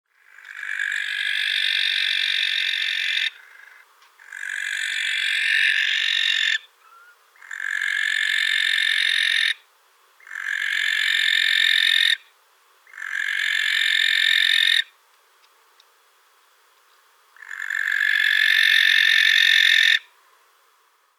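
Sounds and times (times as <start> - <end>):
Tyto alba: 0.1 - 9.6, 10.2 - 12.2, 12.9 - 14.9, 17.4 - 20.1.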